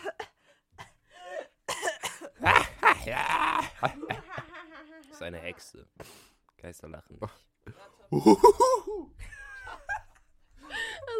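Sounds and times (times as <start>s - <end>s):
person imitating a harsh smoker's cough: 1.7s - 3.3s
laughter: 2.4s - 5.7s, 7.7s - 11.1s
speech: 5.3s - 9.3s.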